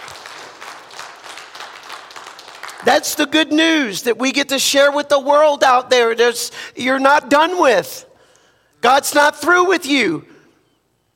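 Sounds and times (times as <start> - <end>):
audience applause during a church sermon: 0.0 - 3.2
speech: 2.8 - 8.1, 8.8 - 10.3.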